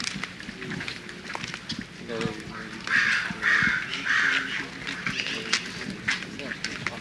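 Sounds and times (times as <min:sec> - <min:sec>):
people talking outdoors: 0:00.4 - 0:06.9
crows cawing: 0:02.5 - 0:05.8.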